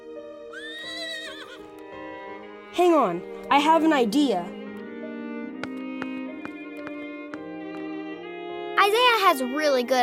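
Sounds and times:
officer's horse whinnying: 0:00.5 - 0:01.7
speech: 0:02.8 - 0:04.6, 0:09.3 - 0:10.0.

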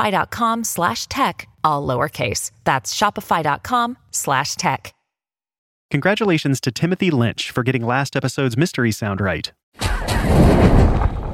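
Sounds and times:
speech: 0:00.0 - 0:05.0, 0:05.9 - 0:10.8
roaring fire burst of a magic umbrella lighting a fire, film sound effect: 0:09.8 - 0:11.3.

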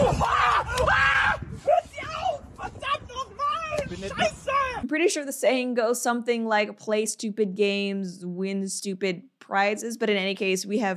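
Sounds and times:
man screaming in pain: 0:00.0 - 0:02.4
man yelping and groaning: 0:00.0 - 0:04.8
speech: 0:05.0 - 0:10.9.

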